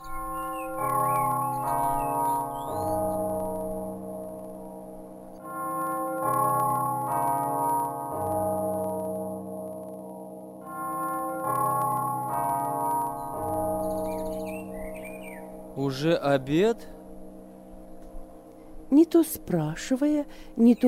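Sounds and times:
faint birdsong chirping: 0.0 - 4.1, 12.6 - 18.8, 19.8 - 20.8
large bell ringing: 0.0 - 20.2
speech: 16.0 - 17.0, 18.9 - 20.8.

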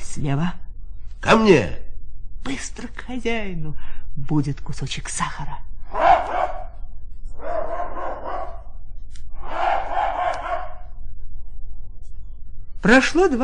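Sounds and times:
low steady hum: 0.0 - 13.4
speech: 0.2 - 0.6, 1.2 - 1.8, 2.4 - 6.0, 12.8 - 13.4
hunting dog barking: 5.9 - 8.8, 9.4 - 11.0.

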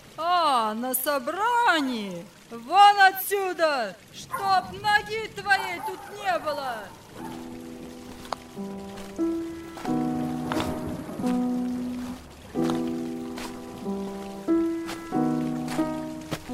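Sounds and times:
heavy rain: 0.0 - 16.5
speech: 0.7 - 7.5
slow sustained musical chords: 7.4 - 16.5.

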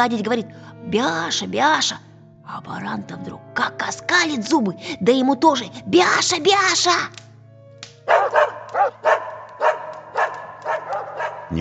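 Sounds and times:
speech: 0.0 - 7.2
two dogs barking in agitated bursts: 8.0 - 11.5.

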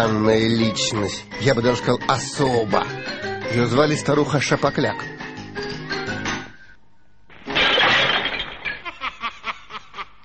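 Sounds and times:
speech: 0.0 - 5.2
window glass shattering from slingshot shot: 7.3 - 9.1
glass shards tinkling: 7.5 - 9.0.

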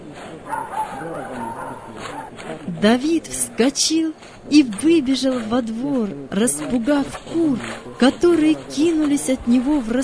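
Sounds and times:
dog barking: 0.4 - 2.3
speech: 0.4 - 10.0.

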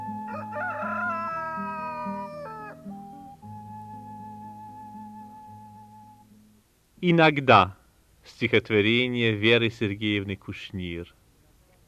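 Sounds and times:
rooster crowing: 0.0 - 3.2
speech: 7.0 - 11.2.

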